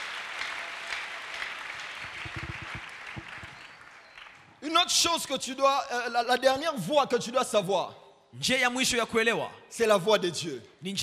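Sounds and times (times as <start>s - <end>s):
congregation applauding during a church service: 0.0s - 4.7s
low thumps: 2.0s - 3.6s
speech: 4.7s - 11.0s.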